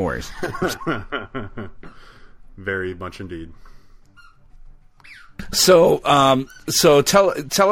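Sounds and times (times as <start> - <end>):
speech: 0.0 - 3.8, 5.1 - 7.7
laughter: 0.3 - 2.0
dog high thin squeaky whines and squeal: 4.2 - 5.5, 6.1 - 7.1.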